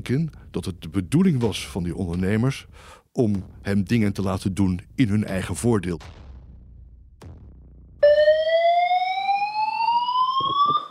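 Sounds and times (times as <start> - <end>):
speech: 0.0 - 6.2
fire alarm continuous electronic tone in a courtroom: 8.0 - 10.9.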